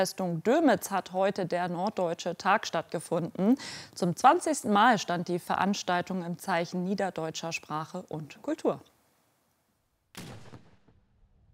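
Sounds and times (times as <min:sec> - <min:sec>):
speech: 0:00.0 - 0:08.9
cannon shot booming over the Dömitz fortress: 0:10.1 - 0:11.5.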